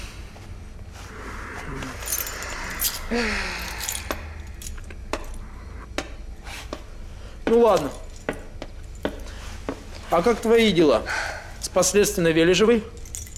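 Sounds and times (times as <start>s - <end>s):
bunch of keys jangling as it is handed over: 1.9s - 5.4s, 7.6s - 9.3s, 12.8s - 13.3s
speech: 3.1s - 3.6s, 7.5s - 8.0s, 10.1s - 13.0s.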